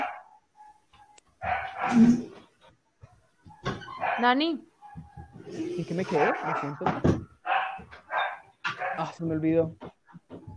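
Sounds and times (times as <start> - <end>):
dog barking in loud harmonic bursts: 0.0 - 0.8, 1.4 - 2.2, 3.5 - 5.4, 6.1 - 9.2
speech: 1.9 - 2.4, 4.2 - 4.7, 5.5 - 7.2, 9.0 - 9.8.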